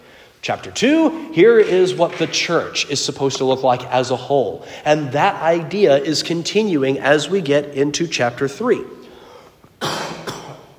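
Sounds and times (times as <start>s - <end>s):
speech: 0.5s - 9.0s
harsh coughs: 9.8s - 10.7s.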